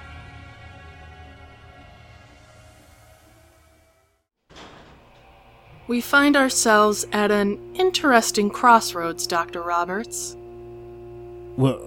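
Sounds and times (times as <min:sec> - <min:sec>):
elevator doors sliding closed with mechanical hum: 0:04.5 - 0:07.4
speech: 0:05.9 - 0:10.4, 0:11.6 - 0:11.8.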